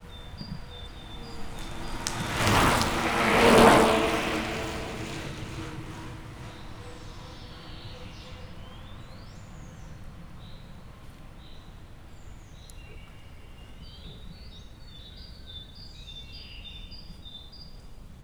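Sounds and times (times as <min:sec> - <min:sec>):
two bicycles riding downhill on a cycling tour at Visegrad: 0:00.0 - 0:12.6.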